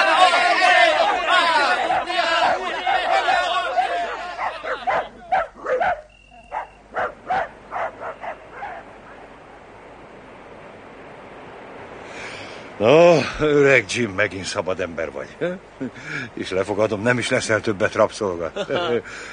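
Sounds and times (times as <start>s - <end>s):
pursuers shouting loudly: 0.0s - 5.9s
pack of dogs barking and yelping excitedly: 1.0s - 9.2s
speech: 12.8s - 19.3s.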